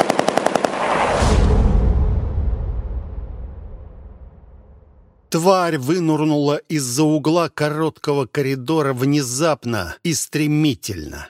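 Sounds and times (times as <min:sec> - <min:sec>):
Degtyaryov machine gun firing a rapid burst: 0:00.0 - 0:00.8
heavy dull boom with deep rolling rumble: 0:01.1 - 0:05.3
speech: 0:05.4 - 0:11.2.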